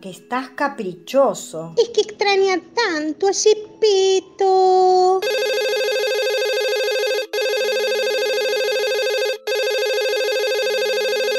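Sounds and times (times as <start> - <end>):
speech: 0.0 - 5.5
telephone ringing with a steady electronic tone: 5.2 - 11.3.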